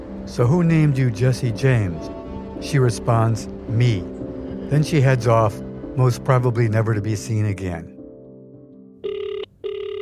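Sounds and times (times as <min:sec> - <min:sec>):
speech: 0:00.3 - 0:07.9
telephone ringing: 0:09.0 - 0:10.0.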